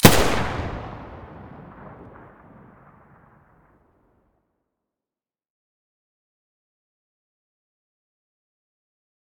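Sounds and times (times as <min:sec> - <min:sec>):
UMP45 muzzle firing in stereo: 0:00.0 - 0:02.7.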